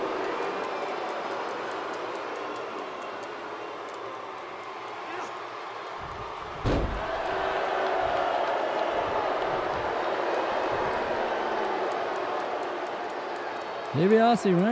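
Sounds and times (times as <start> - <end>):
crowd roaring: 0.0 - 14.6
body slammed onto a wrestling mat: 6.6 - 7.1
speech: 14.0 - 14.6.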